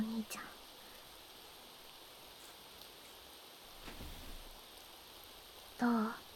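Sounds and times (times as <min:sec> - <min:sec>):
rain falling: 0:00.0 - 0:06.3
speech: 0:00.2 - 0:00.6, 0:05.8 - 0:06.2.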